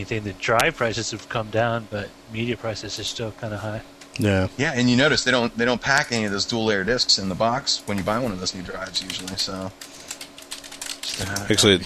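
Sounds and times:
speech: 0:00.0 - 0:10.0, 0:11.2 - 0:11.8
typing on a computer keyboard: 0:08.8 - 0:11.6.

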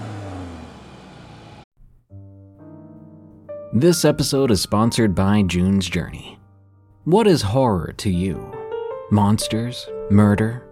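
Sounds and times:
car engine starting, revving and roaring: 0:00.0 - 0:01.6
speech: 0:03.7 - 0:06.4, 0:07.1 - 0:10.7.

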